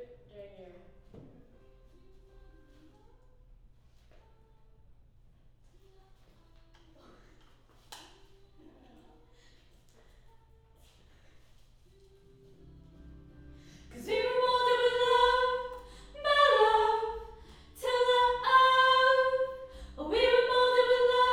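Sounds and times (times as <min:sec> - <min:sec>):
choir singing high harmony: 0:13.0 - 0:21.3.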